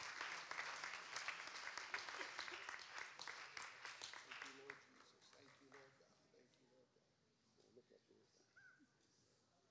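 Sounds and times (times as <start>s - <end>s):
audience applauding: 0.0s - 5.9s
murmuring voices: 0.0s - 8.6s.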